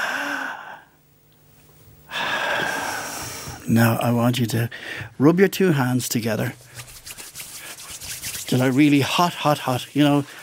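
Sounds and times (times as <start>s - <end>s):
deep inhaled breath: 0.0s - 0.9s, 2.1s - 3.6s, 4.7s - 5.1s
speech: 3.7s - 6.8s, 8.5s - 10.4s
hiss: 8.8s - 10.4s.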